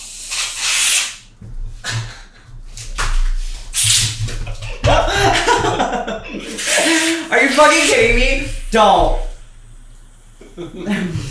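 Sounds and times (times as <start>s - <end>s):
aerosol whipped cream can spraying: 0.0s - 1.3s, 6.4s - 11.2s
laughter: 4.2s - 9.4s, 10.4s - 11.2s
speech: 7.3s - 9.2s, 10.6s - 11.2s.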